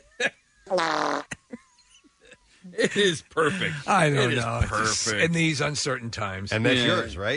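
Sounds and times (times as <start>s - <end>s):
speech: 0.2s - 1.1s, 2.8s - 7.3s
fart: 0.7s - 1.4s.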